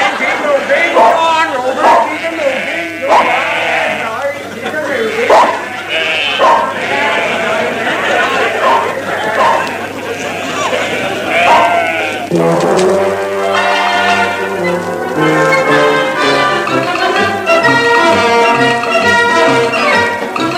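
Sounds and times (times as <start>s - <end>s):
laughter: 0.0s - 20.5s
flock of sheep bleating: 1.8s - 20.5s.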